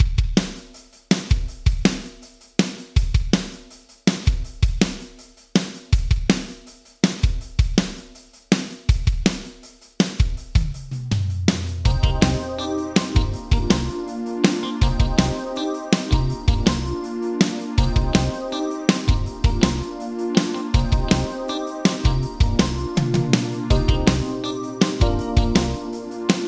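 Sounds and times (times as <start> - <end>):
drums through vintage digital reverb: 0.0 - 26.4.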